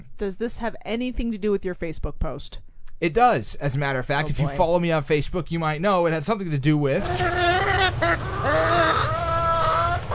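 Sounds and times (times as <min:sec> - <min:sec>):
speech: 0:00.2 - 0:09.2
chickens clucking and squawking: 0:07.0 - 0:10.1.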